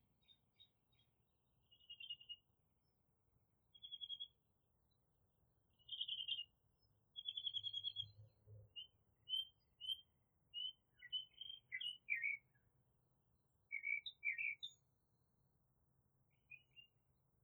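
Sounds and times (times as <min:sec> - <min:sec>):
bird chirping: 0:00.2 - 0:02.4, 0:03.7 - 0:04.4, 0:05.8 - 0:12.6, 0:13.7 - 0:14.8.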